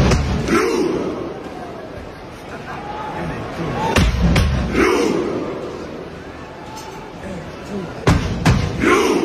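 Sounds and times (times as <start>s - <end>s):
big stadium crowd chanting in unison: 0.0s - 1.8s, 3.3s - 6.2s, 8.3s - 9.2s.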